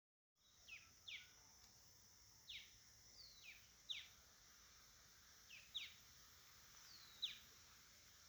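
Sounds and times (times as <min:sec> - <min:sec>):
constant insect buzz: 0:00.4 - 0:08.2
Santa Marta antbird Drymophila hellmayri calling in Colombia: 0:02.5 - 0:04.1, 0:05.5 - 0:06.0, 0:06.9 - 0:07.5.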